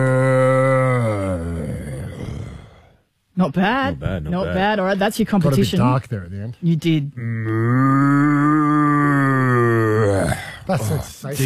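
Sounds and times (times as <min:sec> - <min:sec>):
person imitating a cow mooing: 0:00.0 - 0:02.8, 0:07.2 - 0:10.6
speech: 0:03.4 - 0:07.8, 0:10.7 - 0:11.4.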